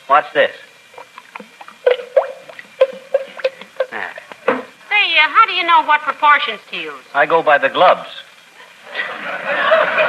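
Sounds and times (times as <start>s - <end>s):
speech: 0.1s - 0.7s, 5.2s - 8.2s
thick liquid paint glugging as poured for mixing colors: 0.9s - 4.3s
laughter: 8.6s - 10.0s.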